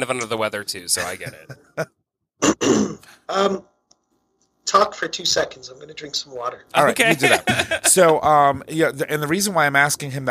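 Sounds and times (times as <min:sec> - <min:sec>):
speech: 0:00.0 - 0:03.7, 0:04.8 - 0:10.3
laughter: 0:01.0 - 0:01.9, 0:06.8 - 0:08.3
person under the weather clearing throat in rough guttural bursts: 0:02.4 - 0:03.0.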